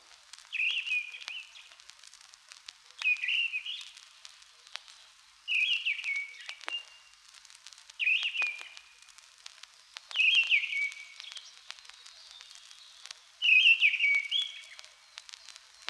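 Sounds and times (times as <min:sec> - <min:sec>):
faint clicks and crackle: 0:00.0 - 0:15.8
Mistle Thrush singing short whistled phrases: 0:00.5 - 0:01.8, 0:03.0 - 0:04.0, 0:05.0 - 0:07.2, 0:08.0 - 0:09.2, 0:09.8 - 0:15.8.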